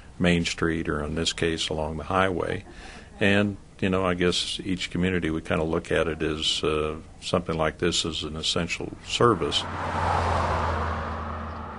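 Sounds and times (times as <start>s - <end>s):
speech: 0.2s - 10.6s
big cattle trucks rumbling along a highway: 8.8s - 11.7s.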